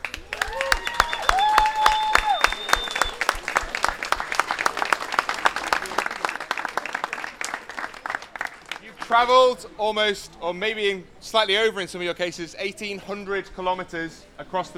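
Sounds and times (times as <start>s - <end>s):
crowd applauding: 0.0s - 9.4s
cheers and whoops: 0.2s - 3.3s
speech: 9.1s - 14.7s.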